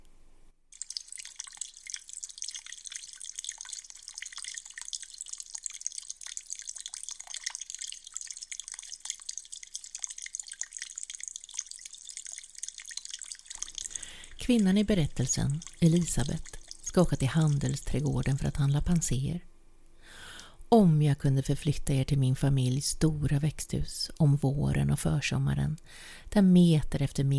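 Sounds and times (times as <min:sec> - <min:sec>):
trickling meltwater from melting snow: 0:00.7 - 0:19.2
speech: 0:14.5 - 0:19.5, 0:20.7 - 0:27.3.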